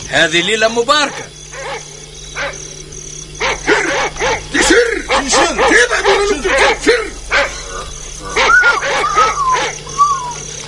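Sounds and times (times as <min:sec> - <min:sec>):
steady hum: 0:00.0 - 0:10.6
speech: 0:00.1 - 0:01.4, 0:04.7 - 0:07.5
dogs barking: 0:01.0 - 0:10.6
thin wavering dog howl: 0:03.4 - 0:10.6.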